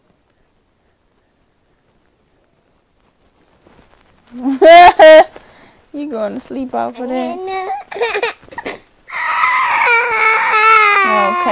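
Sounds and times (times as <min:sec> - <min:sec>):
speech: 0:04.3 - 0:04.9, 0:06.1 - 0:08.2
fussy baby crying: 0:07.2 - 0:11.5.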